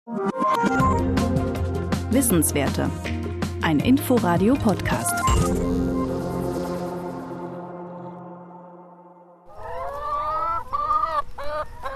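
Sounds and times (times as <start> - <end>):
speech: 0.1 - 1.2, 2.1 - 5.9
short musical tone: 5.0 - 9.5
flock of laying hens clucking and cackling on a pasture: 9.5 - 11.9.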